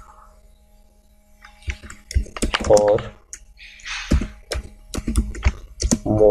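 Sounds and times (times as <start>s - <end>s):
typing on a computer keyboard: 1.5s - 6.3s
speech: 2.7s - 3.2s.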